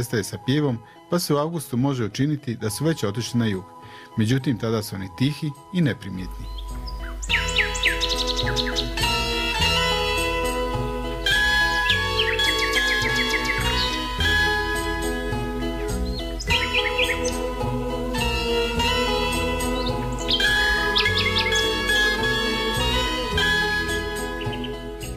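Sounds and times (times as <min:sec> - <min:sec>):
speech: 0:00.0 - 0:07.6
nightingale singing: 0:05.1 - 0:25.1.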